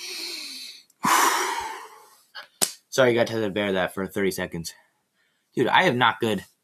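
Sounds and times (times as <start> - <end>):
heavy breathing after singing: 0.0 - 2.3
speech: 3.0 - 4.9, 5.6 - 6.5.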